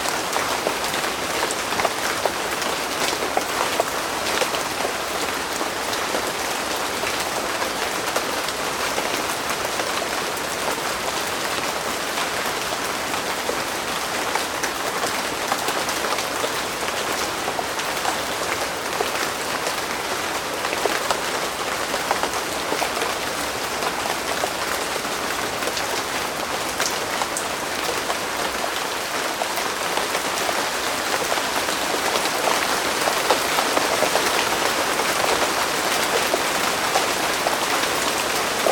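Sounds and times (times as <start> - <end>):
heavy rain in the jungle: 0.0 - 38.6.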